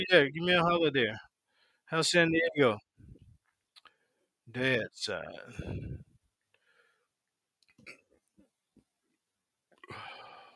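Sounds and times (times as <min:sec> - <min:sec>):
speech: 0:00.0 - 0:01.3, 0:01.9 - 0:03.1, 0:04.5 - 0:06.0
breathy exhale: 0:05.5 - 0:06.0, 0:09.9 - 0:10.5
guttural burp: 0:07.8 - 0:08.2.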